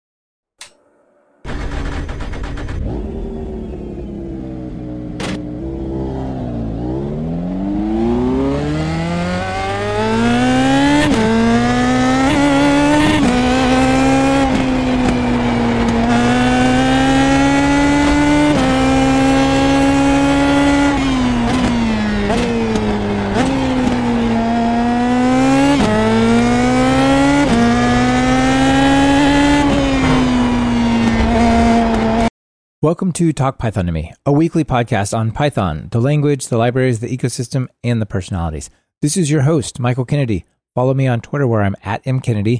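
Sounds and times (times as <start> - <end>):
2017 Indy Pro Mazda race car engine revving on the Brands Hatch circuit: 1.5 - 32.3
speech: 33.0 - 42.5.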